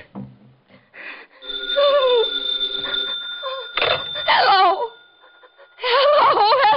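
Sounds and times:
telephone bell ringing: 1.4 - 6.6.

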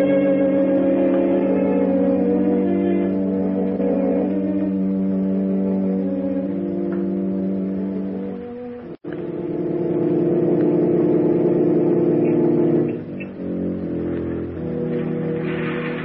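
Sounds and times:
car engine rumbling as it pulls up and idles: 0.2 - 16.0.

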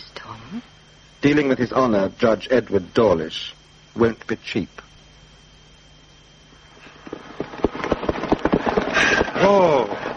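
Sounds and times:
speech: 0.5 - 4.8
horse hooves clip-clopping over a hard surface: 7.0 - 9.4.

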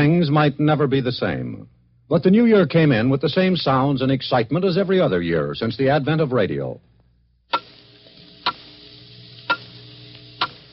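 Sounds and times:
speech: 0.0 - 6.9
clock ticking: 7.5 - 7.8.

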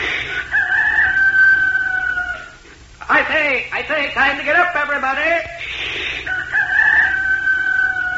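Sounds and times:
person imitating rooster crow: 0.5 - 2.6, 6.3 - 8.1
speech: 3.4 - 5.7.

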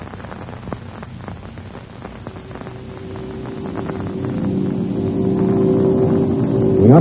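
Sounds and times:
airplane engines droning in flight: 2.4 - 7.0.

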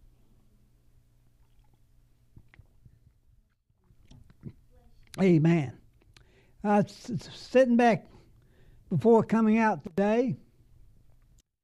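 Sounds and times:
low steady hum: 0.0 - 11.4
person sipping and swallowing water: 1.4 - 2.8
speech: 5.2 - 5.8, 6.6 - 8.1, 8.9 - 10.4.

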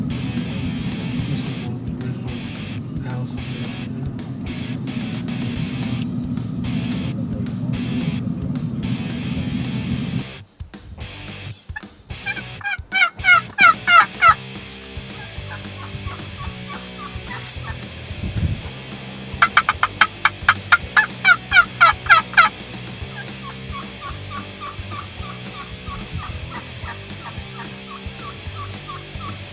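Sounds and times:
outdoor noise: 0.0 - 29.5
wild turkey gobbling: 11.7 - 18.0, 19.3 - 29.5.

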